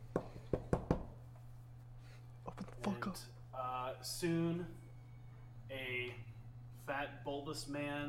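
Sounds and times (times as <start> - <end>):
faint steady low hum: 0.0 - 8.0
sharp knocks on a door: 0.1 - 1.2
speech: 3.0 - 4.8, 5.7 - 6.3, 6.9 - 8.0.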